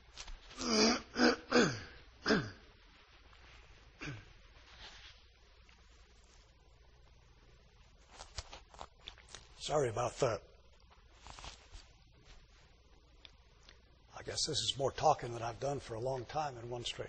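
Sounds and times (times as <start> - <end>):
person clearing throat: 0.6 - 2.6, 4.0 - 4.3
speech: 9.6 - 10.4, 14.4 - 17.0.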